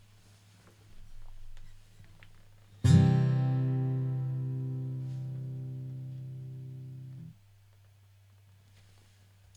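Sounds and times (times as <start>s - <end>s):
C chord strummed on guitar: 2.8s - 7.3s.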